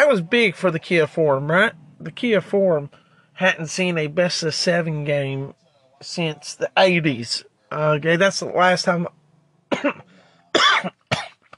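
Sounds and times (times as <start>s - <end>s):
speech: 0.1s - 11.0s
person coughing after food caught in the throat: 9.7s - 11.5s.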